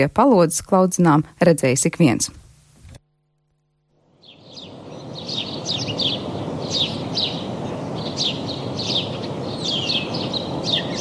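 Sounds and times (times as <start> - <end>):
speech: 0.0 - 2.4
steady rushing noise: 4.0 - 11.0
great tits calling: 4.1 - 11.0.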